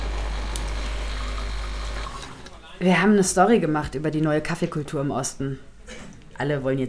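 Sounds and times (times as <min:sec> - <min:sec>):
espresso machine pumping water for a cappuccino: 0:00.0 - 0:02.6
speech: 0:02.8 - 0:06.8.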